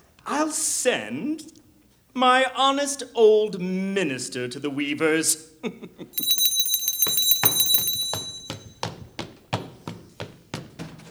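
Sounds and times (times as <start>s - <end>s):
speech: 0.5s - 1.6s, 2.2s - 6.4s
hand bell rung to summon a minister in an emperor's palace: 6.2s - 9.0s
sharp taps: 6.2s - 11.0s.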